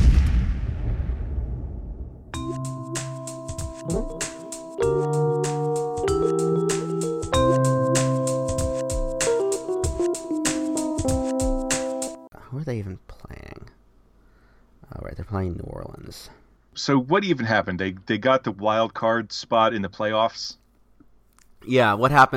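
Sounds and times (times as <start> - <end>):
deep explosion in a movie: 0.0 - 2.4
loud music with sustained tones and sharp steady percussive hits: 2.4 - 12.3
speech: 3.9 - 4.1, 16.1 - 20.6, 21.6 - 22.3.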